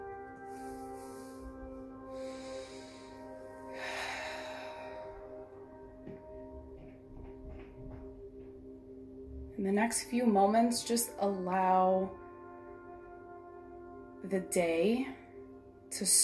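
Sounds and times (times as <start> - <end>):
slow deep breaths during a guided relaxation: 0.4 - 6.4
speech: 9.6 - 12.2, 14.3 - 15.2, 16.0 - 16.2.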